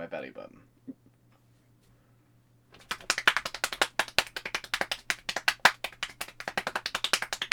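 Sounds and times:
speech: 0.0s - 1.0s
rapid hand clapping by a single person: 2.7s - 7.5s.

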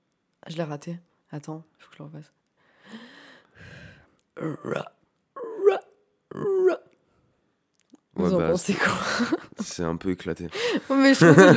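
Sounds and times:
speech: 0.5s - 3.0s, 4.4s - 5.0s, 8.2s - 11.5s
voice imitating a croaking frog: 4.4s - 6.9s
laughter: 8.7s - 9.9s, 10.6s - 11.5s.

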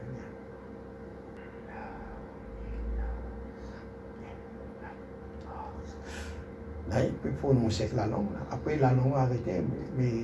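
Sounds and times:
steady low hum: 0.0s - 10.2s
deliberate slow breathing, inhaling and exhaling: 1.4s - 6.5s
speech: 6.9s - 10.2s.

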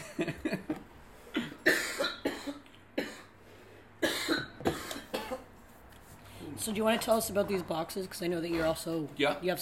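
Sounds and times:
harsh coughing: 0.0s - 3.4s, 4.0s - 5.5s
speech: 6.7s - 9.6s.

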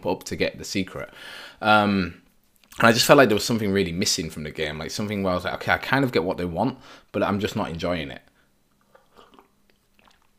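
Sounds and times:
speech: 0.0s - 2.2s, 2.8s - 8.3s
sipping coffee from a cup: 8.8s - 10.3s
slurp: 8.8s - 10.3s
swallowing: 8.8s - 10.3s
wet mouth clicks: 8.8s - 10.3s.

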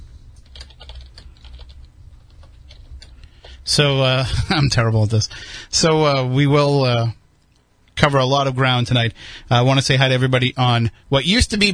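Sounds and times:
typing on a computer keyboard: 0.4s - 3.6s
speech: 3.7s - 7.2s, 8.0s - 11.7s.

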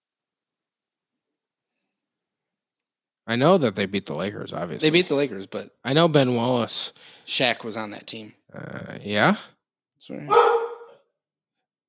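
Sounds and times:
speech: 3.3s - 10.6s
single drawn-out dog bark: 10.3s - 11.0s.

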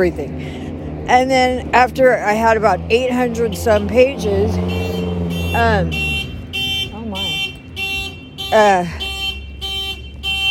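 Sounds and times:
speech: 0.0s - 4.8s, 5.5s - 6.0s, 8.5s - 9.0s
car alarm whooping and beeping: 4.5s - 10.4s.

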